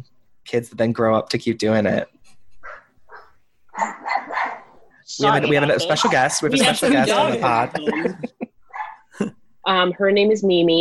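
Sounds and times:
speech: 0.5s - 2.2s, 5.1s - 8.4s, 9.2s - 10.7s
dog barking: 2.6s - 4.8s, 8.7s - 9.1s
laughter: 5.5s - 8.6s.

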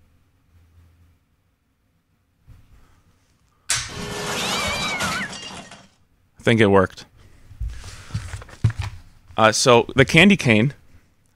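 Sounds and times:
harsh noisy static: 3.7s - 5.9s
yowling cat meow sound effect: 4.0s - 5.8s
speech: 6.4s - 7.1s, 9.4s - 10.8s.

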